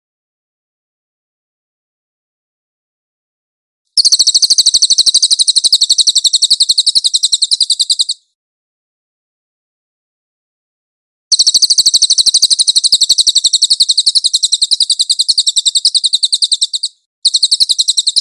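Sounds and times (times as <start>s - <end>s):
cililin singing a high rapid chattering trill: 4.0s - 8.3s, 11.3s - 18.1s.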